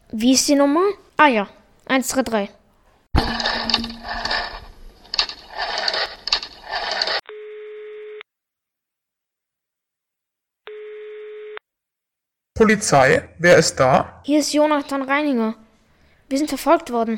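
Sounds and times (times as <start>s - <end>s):
speech: 0.1s - 2.6s, 12.6s - 15.6s, 16.3s - 17.1s
old telephone being dialed, mechanical clattering and whirring: 3.2s - 7.2s
long steady telephone ringing tones: 7.0s - 8.2s, 10.7s - 11.6s.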